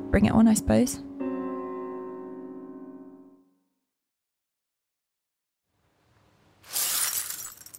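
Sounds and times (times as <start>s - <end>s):
speech: 0.1s - 1.1s
mirror crashing to the floor and shattering: 6.7s - 7.7s.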